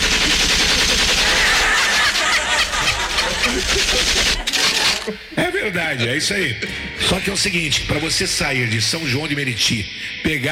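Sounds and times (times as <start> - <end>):
rapid automatic gunfire sound effect: 0.0 - 5.0
faint voices or laughter: 0.1 - 5.5
speech: 5.7 - 10.5.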